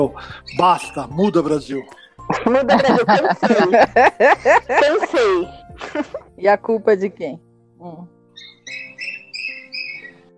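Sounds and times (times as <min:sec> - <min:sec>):
speech: 0:00.0 - 0:08.1
small bird chirping in a garden: 0:00.3 - 0:02.2, 0:08.3 - 0:10.3
laughter: 0:02.3 - 0:06.2.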